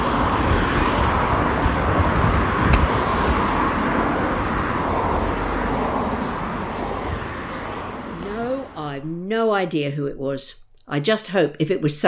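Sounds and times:
large vehicle engine rumbling: 0.0 - 9.1
broadband road noise: 0.0 - 10.0
speech: 9.6 - 12.0.

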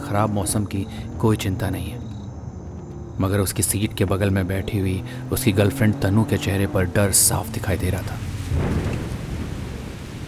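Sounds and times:
speech: 0.1 - 2.1, 3.2 - 8.9
deep rumble of thunder: 7.2 - 10.2
steady heavy rain: 7.3 - 10.2.

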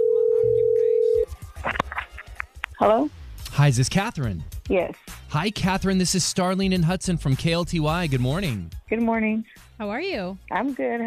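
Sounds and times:
electronic ringback tone over a phone line on an outgoing call: 0.0 - 1.3
speech: 2.8 - 11.0.

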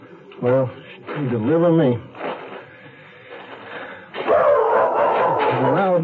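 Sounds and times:
speech: 0.4 - 2.1
small dog barking and yipping excitedly: 4.3 - 5.8.

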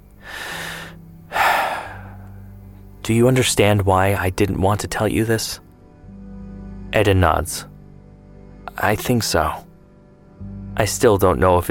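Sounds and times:
man taking a deep breath: 0.1 - 2.6
speech: 3.0 - 5.6, 6.9 - 7.7, 8.8 - 9.7, 10.4 - 11.6.

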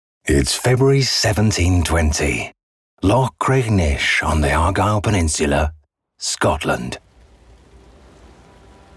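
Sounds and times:
speech: 0.3 - 7.0
light rain falling: 6.6 - 8.9
low rumble: 7.0 - 8.9.

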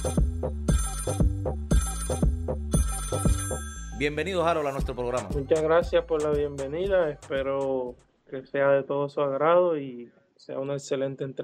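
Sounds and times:
musical telephone ringtone for an incoming call: 0.0 - 4.9
speech: 4.0 - 11.4.

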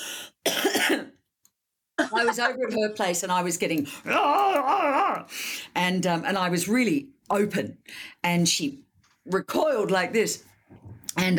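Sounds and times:
harsh throaty hacking cough: 0.4 - 1.2
speech: 2.2 - 11.3.

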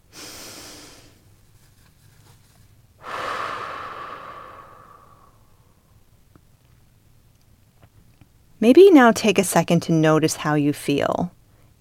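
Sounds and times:
deep breath with airy inhale and longer exhale: 0.0 - 1.2, 3.0 - 5.8
speech: 8.6 - 11.7.

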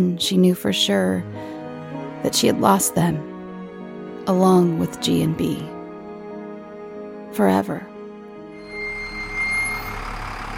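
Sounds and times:
speech: 0.0 - 1.5, 2.2 - 3.3, 4.2 - 5.8, 7.3 - 7.9
large bus engine droning as it pulls up: 8.6 - 10.5.

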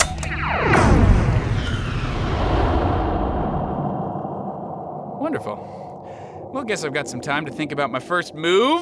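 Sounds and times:
spaceship slip space jump loud rumbling boom: 0.0 - 6.7
spaceship slip space jump rising whoosh with sweeping tones: 0.3 - 7.8
speech: 5.4 - 5.8, 6.5 - 8.7.

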